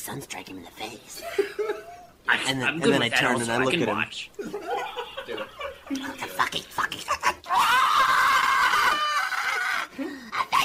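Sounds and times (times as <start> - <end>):
speech: 0.0 - 4.9
laughter: 4.4 - 9.9
person screaming, acted as from a basement: 7.5 - 10.0.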